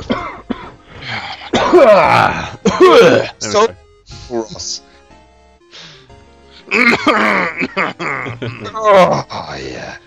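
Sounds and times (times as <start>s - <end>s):
person coughing raspily and clearing throat: 0.0s - 0.8s, 1.4s - 3.3s, 6.7s - 8.7s
speech: 1.7s - 4.9s, 6.7s - 10.0s.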